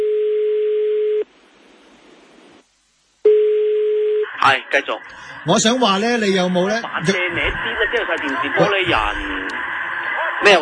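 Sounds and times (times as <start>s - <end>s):
steady electronic telephone tone signalling an incoming call: 0.0s - 1.3s, 3.3s - 4.3s
soft hiss: 1.2s - 3.7s
speech: 4.5s - 9.4s, 10.4s - 10.6s.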